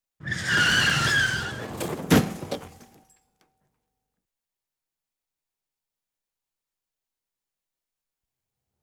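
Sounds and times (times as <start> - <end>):
car braking skid: 0.2 - 3.0.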